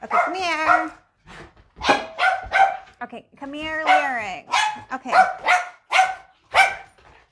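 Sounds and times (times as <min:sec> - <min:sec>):
dog barking: 0:00.0 - 0:01.0, 0:01.8 - 0:03.0, 0:03.8 - 0:07.0
dog yelp: 0:01.8 - 0:02.8, 0:03.8 - 0:07.0
speech: 0:03.0 - 0:05.6.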